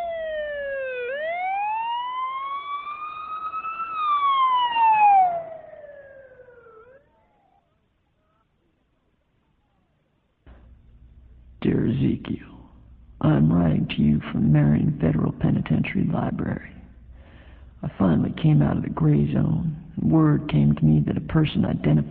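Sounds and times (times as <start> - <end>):
ambulance siren wailing: 0.0 - 7.6
speech: 12.0 - 12.6, 13.9 - 16.8, 17.8 - 22.0.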